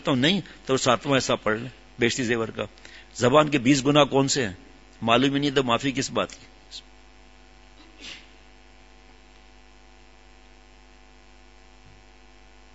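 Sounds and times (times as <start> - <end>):
speech: 0.0 - 6.9
constant loud mains hum: 0.0 - 12.7
faint sneeze at a gathering: 7.8 - 8.5.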